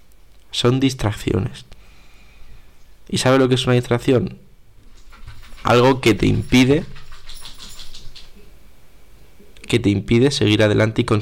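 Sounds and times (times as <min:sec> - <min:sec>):
low room noise: 0:00.0 - 0:11.2
speech: 0:00.6 - 0:01.8, 0:03.1 - 0:04.4, 0:05.6 - 0:07.0, 0:09.7 - 0:11.2
dog scratching itself: 0:04.9 - 0:08.4
light metallic jingle: 0:04.9 - 0:08.5.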